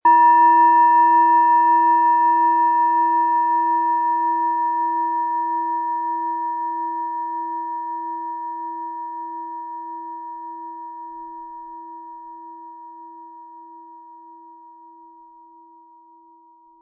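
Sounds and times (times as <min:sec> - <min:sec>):
Hopi heart tone planetary singing bowl 10.7 cm struck with mallet: 0:00.0 - 0:13.3.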